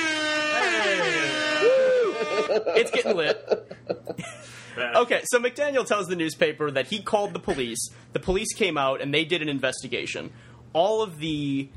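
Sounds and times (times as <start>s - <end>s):
air horn blast: 0.0s - 2.5s
laughter: 0.5s - 4.6s
speech: 2.5s - 3.6s, 4.8s - 11.7s.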